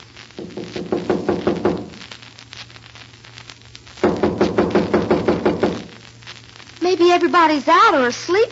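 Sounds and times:
rapid knocking on a wooden cabin door: 0.4 - 2.0, 4.0 - 5.8
speech: 6.9 - 8.4.

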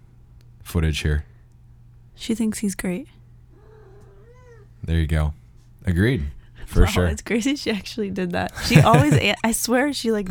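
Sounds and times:
steady low hum: 0.0 - 10.2
speech: 0.7 - 1.3, 2.2 - 3.2, 4.8 - 10.2
cat meowing: 3.6 - 4.7
laughter: 8.5 - 9.4.

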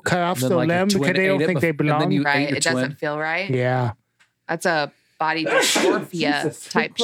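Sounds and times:
speech: 0.1 - 7.0
person sneezing: 5.4 - 6.1.

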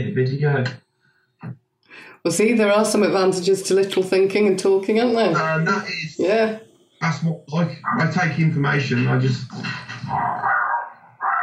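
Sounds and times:
speech: 0.0 - 0.8, 1.4 - 10.5
Chihuahua and Chinese Crested mix dog barking: 10.1 - 11.4.

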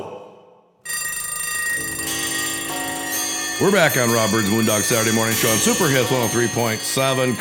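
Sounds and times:
bells ringing: 0.9 - 7.3
speech: 3.6 - 7.3.

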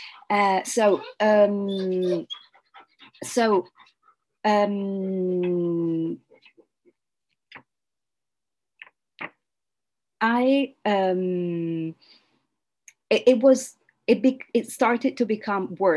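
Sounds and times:
speech: 0.1 - 2.5, 3.2 - 3.8, 4.4 - 6.3, 10.2 - 12.2, 13.1 - 15.9
upset dog whining and whimpering before a storm: 0.9 - 3.9.

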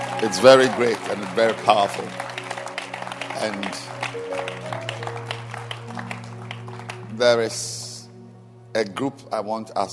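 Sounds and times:
audience applause for community leaders at a gathering: 0.0 - 7.4
speech: 0.2 - 2.3, 3.4 - 4.9, 7.2 - 7.8, 8.7 - 9.9.

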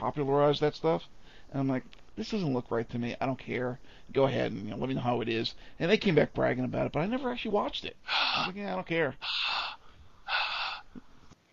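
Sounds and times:
speech: 0.0 - 9.6
person panting to catch their breath: 8.0 - 8.6, 9.2 - 11.2.

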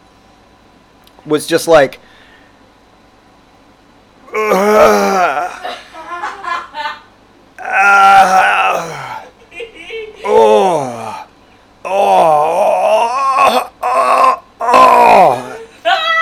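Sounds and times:
speech: 1.2 - 2.1
man vocally imitating straining and groaning: 4.3 - 5.7, 7.6 - 9.2, 10.2 - 15.7.

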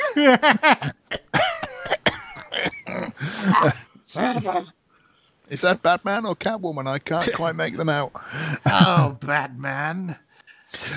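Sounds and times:
voice imitating a creaky old man's laugh: 0.0 - 1.2, 3.4 - 4.7, 8.7 - 9.2
harsh raspy coughs: 0.0 - 4.7, 7.2 - 7.5, 8.5 - 9.2
speech: 0.2 - 1.2, 5.5 - 10.2, 10.8 - 10.9.

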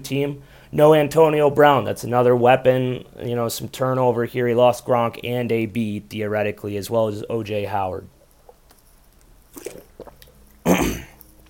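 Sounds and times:
speech: 0.0 - 8.2
sipping and swallowing water: 8.1 - 11.4
harsh throat clearing: 10.6 - 11.2.

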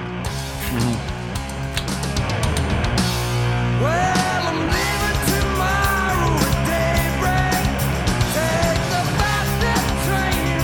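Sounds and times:
rock band playing a cover version with drums and guitars: 0.0 - 10.6
male singer's voice rising, bending and cracking: 0.6 - 1.1, 3.8 - 10.6.

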